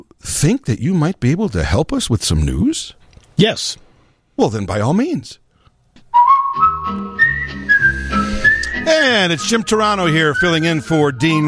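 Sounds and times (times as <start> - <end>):
speech: 0.2 - 3.8, 4.4 - 5.4, 8.9 - 11.4
bright whistled jingle melody: 6.1 - 11.4
short musical backing: 6.1 - 11.4.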